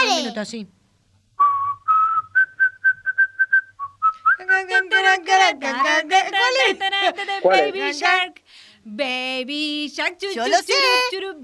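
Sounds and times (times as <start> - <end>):
speech: 0.4 - 0.8, 4.6 - 11.4
person whistling a bouncy children's tune: 1.4 - 4.5.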